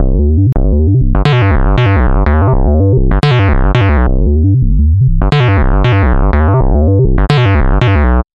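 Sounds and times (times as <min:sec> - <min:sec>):
square wave bass: 0:00.0 - 0:08.3.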